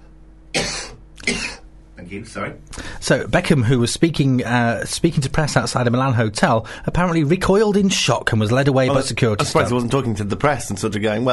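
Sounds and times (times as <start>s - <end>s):
man coughing: 0.6s - 1.7s
speech: 0.6s - 11.3s.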